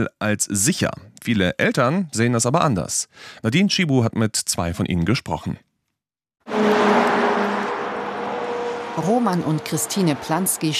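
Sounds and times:
speech: 0:00.0 - 0:05.7, 0:09.0 - 0:10.7
car speeding past on a country road: 0:06.5 - 0:10.7.

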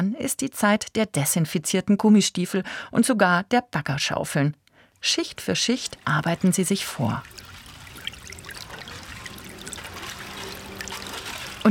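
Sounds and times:
speech: 0:00.0 - 0:07.5
groundwater trickling out between steel sheet piles: 0:04.8 - 0:11.6.

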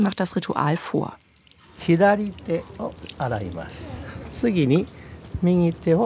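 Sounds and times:
speech: 0:00.0 - 0:01.2, 0:01.8 - 0:06.0
water pouring from a spout into the stone basin of a Shinto shrine well: 0:00.0 - 0:04.4.

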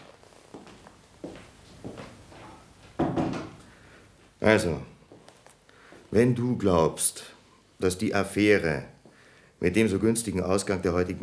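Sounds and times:
soft knocks and creaks of door handling: 0:03.0 - 0:03.6
speech: 0:04.4 - 0:04.9, 0:06.1 - 0:08.9, 0:09.6 - 0:11.2.

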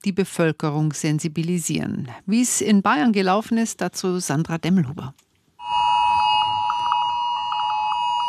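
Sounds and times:
speech: 0:00.0 - 0:05.2
several mobile phones blaring a cell broadcast emergency alert in an open-plan office in Bavaria, Germany: 0:05.6 - 0:08.2.

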